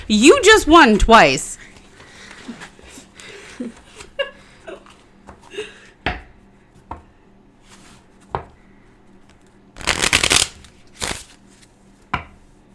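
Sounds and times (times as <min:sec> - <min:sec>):
speech: 0:00.1 - 0:01.5
playing cards snapping and tapping: 0:09.8 - 0:11.3.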